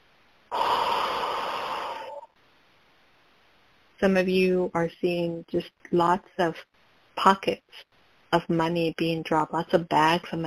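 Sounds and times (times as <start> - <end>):
deep breath during a guided relaxation exercise: 0.5 - 2.4
speech: 4.0 - 10.4.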